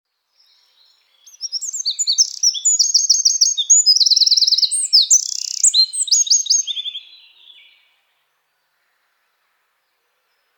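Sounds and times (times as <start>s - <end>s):
Eurasian wren Troglodytes troglodytes singing trills and sharp notes: 0.4s - 7.8s.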